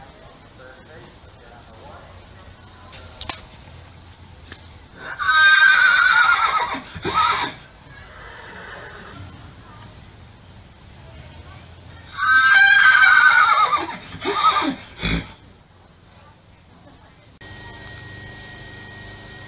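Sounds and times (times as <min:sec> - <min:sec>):
horse whinnying: 0:05.0 - 0:09.3, 0:12.1 - 0:15.4.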